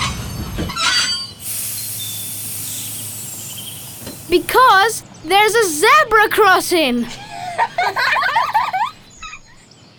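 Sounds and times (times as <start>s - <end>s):
high shrill train wheel squeal: 0.0s - 4.3s
train braking with rumble: 0.0s - 7.5s
steady hiss of released air from train: 1.4s - 5.2s
speech: 4.3s - 7.2s
laughter: 4.3s - 9.4s.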